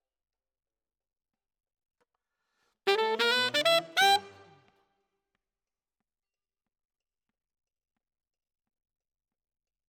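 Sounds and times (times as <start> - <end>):
alto: 2.9 - 4.6.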